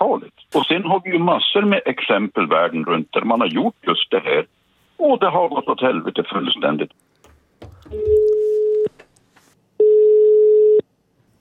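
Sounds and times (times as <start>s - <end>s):
speech: 0.0s - 7.1s, 7.9s - 8.4s
ringback tone of an outgoing telephone call: 7.8s - 8.9s, 9.8s - 10.8s.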